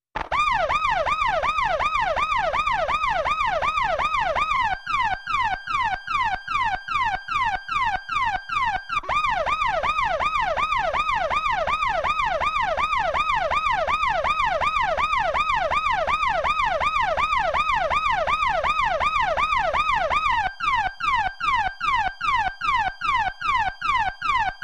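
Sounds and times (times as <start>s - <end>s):
close yelper siren: 0.2s - 24.6s.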